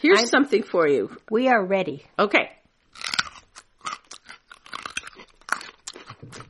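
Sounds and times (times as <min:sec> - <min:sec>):
speech: 0:00.0 - 0:03.1
crunchy chewing of raw local Iowa carrots: 0:02.9 - 0:06.4.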